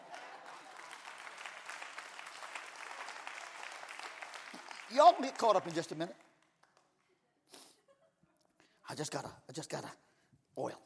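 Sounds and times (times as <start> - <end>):
congregation clapping: 0.0 - 7.1
speech: 4.9 - 6.2, 8.9 - 10.0, 10.6 - 10.8.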